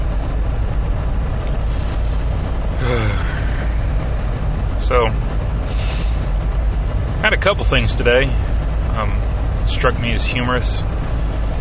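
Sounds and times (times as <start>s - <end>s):
tire and engine road rumble inside a jeep driving home: 0.0s - 11.5s
speech: 4.9s - 5.2s, 7.4s - 10.9s.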